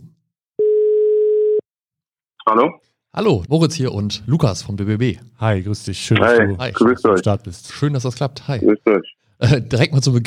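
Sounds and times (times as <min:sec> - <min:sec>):
telephone ringback tone while a call is placed: 0:00.6 - 0:01.6
speech: 0:02.5 - 0:10.2.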